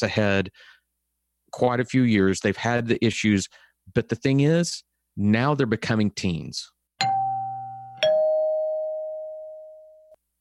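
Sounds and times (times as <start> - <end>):
speech: 0.0 - 0.8, 1.5 - 7.1
two-tone doorbell chime: 7.0 - 10.2.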